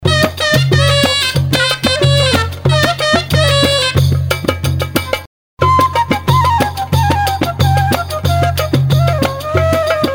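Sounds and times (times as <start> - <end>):
percussion: 0.0 - 10.1
oriental flute: 1.8 - 3.7, 5.1 - 10.1.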